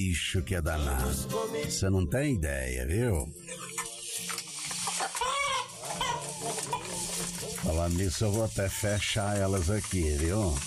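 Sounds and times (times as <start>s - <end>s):
speech: 0.0s - 3.7s, 7.6s - 10.6s
farmyard noise: 3.5s - 10.6s
chickens clucking and squawking while being fed: 4.5s - 7.6s.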